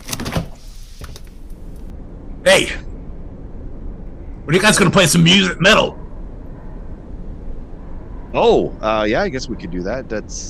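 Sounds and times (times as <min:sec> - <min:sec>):
door opening with mechanical clunk and latch rattle: 0:00.0 - 0:01.4
speech: 0:02.4 - 0:02.9, 0:04.5 - 0:06.0, 0:08.4 - 0:10.4.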